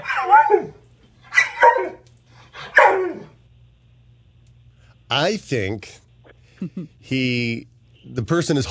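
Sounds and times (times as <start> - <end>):
dog yowling barks in anticipation of a walk: 0.0 - 2.0, 2.6 - 3.4
faint low hum: 0.0 - 8.6
speech: 5.1 - 6.0, 6.6 - 8.6.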